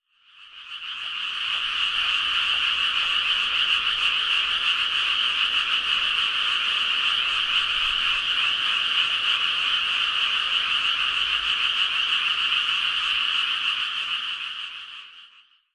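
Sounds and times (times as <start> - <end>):
Japanese tree frog calling: 0.2 - 15.7.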